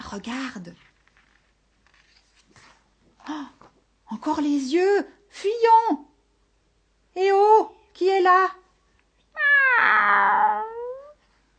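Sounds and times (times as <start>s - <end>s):
speech: 0.1s - 0.9s, 3.2s - 6.1s, 7.2s - 8.6s, 9.6s - 10.7s
cat meowing: 9.4s - 11.2s.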